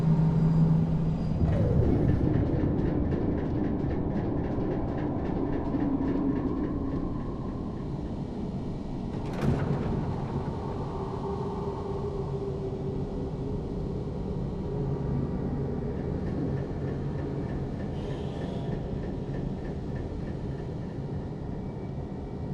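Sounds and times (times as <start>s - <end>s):
outdoor ambience above a cavern: 0.0s - 22.5s.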